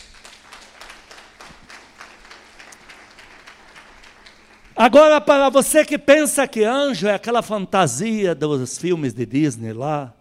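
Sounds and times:
crowd clapping in applause: 0.0s - 5.2s
speech: 4.8s - 10.2s.

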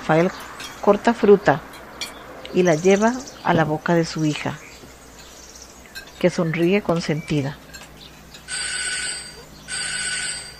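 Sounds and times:
speech: 0.1s - 1.7s, 2.5s - 4.6s, 6.2s - 7.6s
electronic doorbell ringing through a house: 8.4s - 10.5s.

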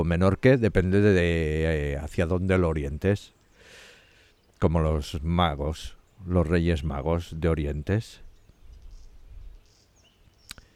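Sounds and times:
speech: 0.0s - 3.4s, 4.6s - 8.2s
birds chirping outside at dusk: 0.0s - 10.7s.

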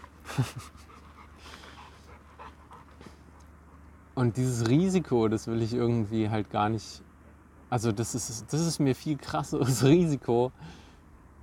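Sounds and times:
laughter: 0.2s - 0.9s
speech: 0.4s - 0.9s, 4.2s - 7.1s, 7.7s - 10.8s
dog panting: 0.7s - 3.8s.

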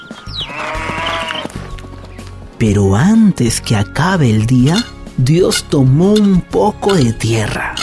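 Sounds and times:
sheep bleating: 0.4s - 1.6s
speech: 2.6s - 7.8s.

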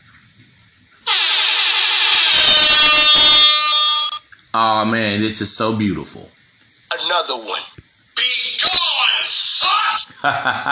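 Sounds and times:
harsh horn-like alarm sound effect: 1.1s - 4.2s
speech: 4.6s - 6.4s, 7.2s - 10.7s.

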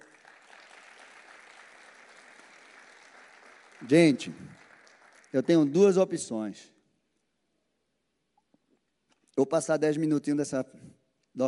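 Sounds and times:
church audience applauding: 0.0s - 6.1s
speech: 3.8s - 4.6s, 5.3s - 6.7s, 9.4s - 11.4s.

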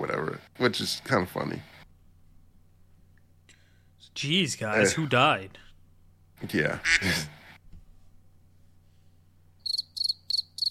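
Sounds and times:
speech: 0.0s - 1.7s, 4.1s - 5.6s, 6.4s - 7.4s
crickets chirping: 9.6s - 10.6s.

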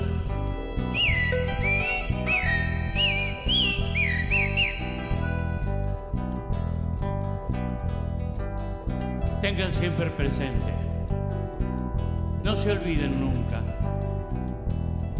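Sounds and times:
thrush singing whistled phrases: 0.0s - 6.1s
loud steady instrumental music: 0.0s - 15.1s
speech: 0.8s - 1.3s, 9.5s - 10.8s, 12.4s - 13.6s.

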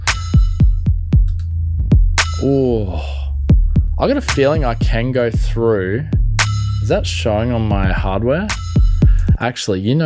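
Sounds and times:
bass thumps in a music mix processed on a Core 1 Max with modeled compressor: 0.0s - 9.4s
sustained low rumble: 0.9s - 8.5s
speech: 2.4s - 3.2s, 4.0s - 6.2s, 6.9s - 8.6s, 9.4s - 10.0s.

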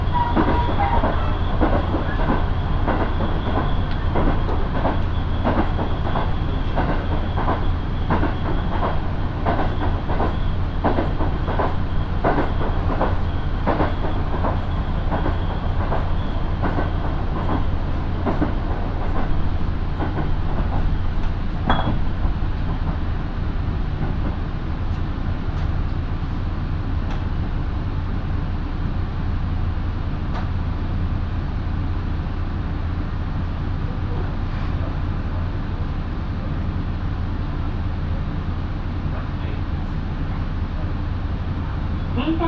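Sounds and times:
local passenger train on the Minobu Line in Japan rolling on rails: 0.0s - 42.4s
train wheels clacking over rail joints: 0.2s - 19.4s, 20.0s - 23.0s.

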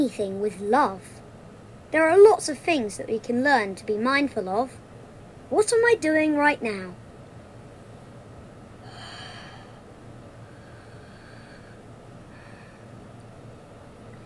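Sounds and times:
speech: 0.0s - 1.2s, 1.9s - 4.8s, 5.5s - 7.0s
steady hiss: 0.0s - 14.2s
deliberate audible breaths: 8.8s - 13.1s.

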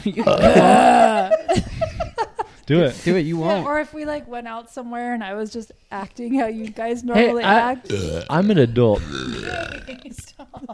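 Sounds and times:
speech: 0.0s - 1.0s, 2.7s - 10.7s
laughter: 0.0s - 2.6s, 9.8s - 10.7s
short breathy vocal noises: 0.2s - 1.3s, 7.8s - 10.1s
person burping: 0.2s - 1.4s, 7.8s - 10.2s.

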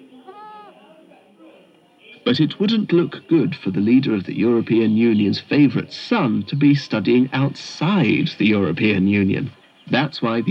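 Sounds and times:
murmuring background: 0.0s - 10.4s
baby goat bleating: 0.2s - 0.8s
speech: 2.3s - 10.4s.

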